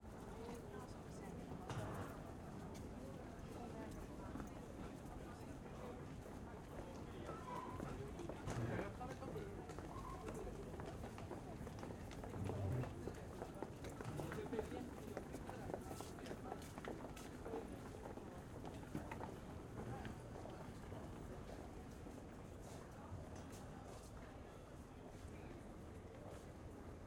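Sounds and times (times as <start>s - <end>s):
busy crowd in a subway station tunnel in Stockholm: 0.0s - 27.0s.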